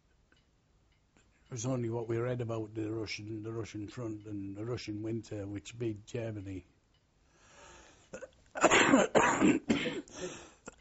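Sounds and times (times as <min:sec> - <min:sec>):
speech: 0:01.5 - 0:06.7, 0:09.0 - 0:10.1
person clearing throat: 0:08.2 - 0:10.2
person coughing rough and raspy: 0:08.2 - 0:10.5.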